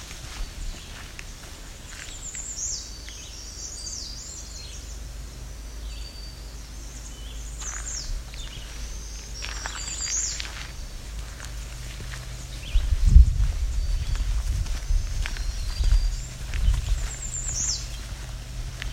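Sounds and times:
footsteps: 0.0 - 2.4, 7.6 - 18.9
black-throated green warbler songs: 0.0 - 18.9
steady low outdoor rumble: 0.0 - 18.9.

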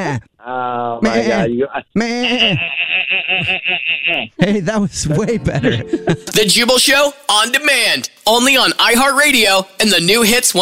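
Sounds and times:
speech: 0.0 - 10.5
person imitating goat bleats: 0.4 - 4.4
laughter: 1.0 - 4.2, 5.0 - 6.4.

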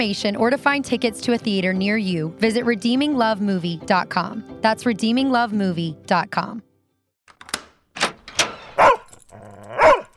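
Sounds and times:
speech: 0.0 - 6.7
dog barking at returning owner: 8.8 - 10.1.

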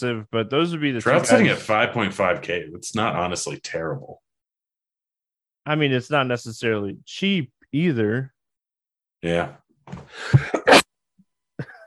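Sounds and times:
speech: 0.0 - 4.2, 5.6 - 8.4, 9.2 - 10.6
forceful sneeze: 10.2 - 10.9.

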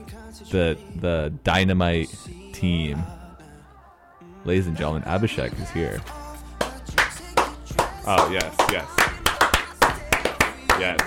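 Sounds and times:
speech: 0.4 - 3.2, 4.4 - 6.2, 8.0 - 9.0, 10.8 - 11.0
hand claps welcoming a returning co-host: 6.6 - 11.0.

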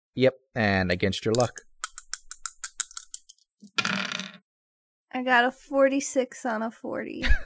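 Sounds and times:
speech: 0.2 - 1.7, 5.2 - 7.4
dice clattering across a hard surface: 1.4 - 4.4.

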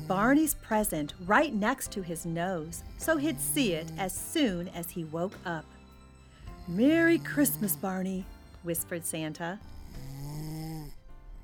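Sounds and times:
loud snoring: 0.0 - 0.3, 6.5 - 8.0, 9.6 - 11.4
speech: 0.1 - 5.7, 6.7 - 10.1.

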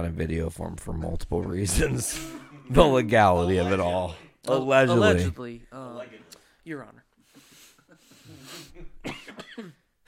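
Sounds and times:
speech: 0.0 - 7.0
person coughing harshly: 1.8 - 2.7, 8.6 - 10.0.

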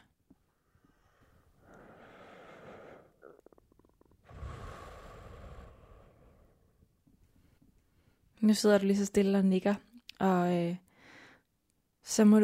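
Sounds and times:
slow deep breaths: 0.5 - 8.3, 10.9 - 11.5
speech: 8.4 - 10.8, 12.0 - 12.4.

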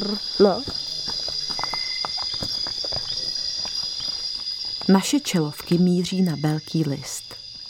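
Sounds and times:
speech: 0.0 - 0.8, 4.9 - 7.3
great green bush-cricket stridulating: 0.0 - 7.6
soft footsteps: 0.5 - 5.9.

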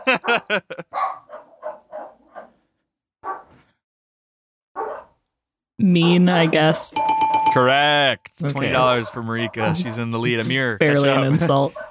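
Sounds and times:
laughter: 0.0 - 0.9, 11.0 - 11.8
dogs barking: 0.0 - 2.6, 3.2 - 3.6, 4.8 - 5.2, 6.0 - 6.8, 8.8 - 10.0, 11.6 - 11.8
speech: 0.1 - 0.9, 5.9 - 11.8.

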